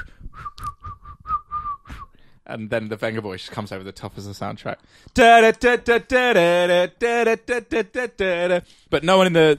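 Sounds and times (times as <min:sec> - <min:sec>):
ship's water captain blowing shrill whistle blasts as command to come ashore: 0:00.0 - 0:02.1
speech: 0:02.5 - 0:09.5.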